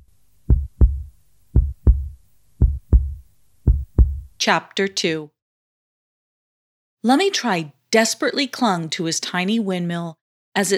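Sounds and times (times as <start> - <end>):
slow steady heartbeat thumping: 0.5 - 4.4
speech: 4.4 - 5.4, 7.0 - 10.7.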